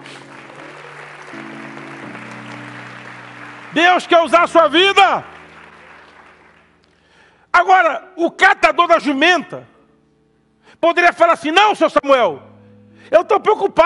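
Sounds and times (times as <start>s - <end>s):
crowd clapping: 0.0s - 7.2s
sustained keyboard chords: 0.0s - 13.8s
man speaking loudly: 3.7s - 5.3s, 7.5s - 9.8s, 10.8s - 12.5s, 13.1s - 13.8s
speech: 3.7s - 5.3s, 7.6s - 9.7s, 10.8s - 13.8s.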